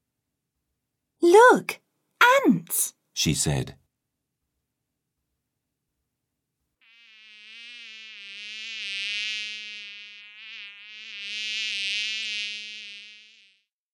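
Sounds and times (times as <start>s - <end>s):
speech: 1.5s - 1.8s, 2.4s - 3.8s
fly buzzing past: 6.8s - 13.7s.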